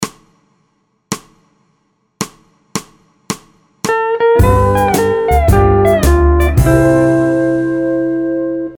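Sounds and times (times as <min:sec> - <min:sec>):
musical vamp in the key of C in 4 4 time: 0:04.4 - 0:08.6.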